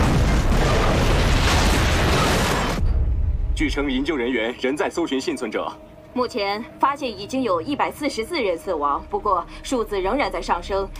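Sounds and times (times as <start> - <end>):
bomb explosion with rumbling and debris: 0.0 - 3.7
speech: 3.6 - 10.9.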